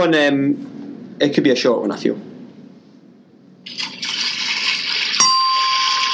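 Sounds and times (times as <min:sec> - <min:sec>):
speech: 0:00.0 - 0:02.3, 0:03.6 - 0:04.0
swimming race splashes and churning water: 0:03.7 - 0:05.6
sharp bright ding: 0:05.2 - 0:06.1.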